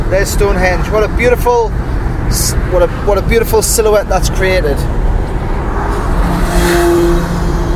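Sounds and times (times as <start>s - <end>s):
road and traffic noise: 0.0s - 7.7s
speech: 0.1s - 5.0s, 6.7s - 7.0s
motorbike engine roaring past on road: 5.4s - 7.7s.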